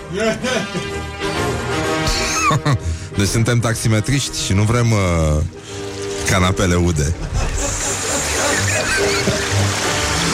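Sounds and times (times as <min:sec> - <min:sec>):
laughter: 0:00.0 - 0:01.1, 0:01.9 - 0:03.0, 0:07.1 - 0:10.3
speech: 0:00.1 - 0:01.4, 0:02.1 - 0:07.8
water flowing like a stream: 0:00.1 - 0:10.3
small water splashes: 0:04.2 - 0:10.3.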